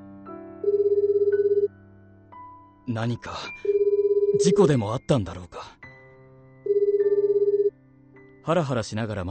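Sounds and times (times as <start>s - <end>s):
phone ringback tone while calling: 0.6s - 1.7s, 3.7s - 4.7s, 6.7s - 7.7s
speech: 2.9s - 3.8s, 4.4s - 5.8s, 8.4s - 9.2s.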